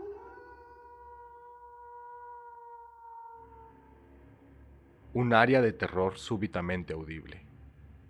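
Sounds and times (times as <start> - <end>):
wolf howling: 0.0 - 4.0
speech: 5.2 - 7.5.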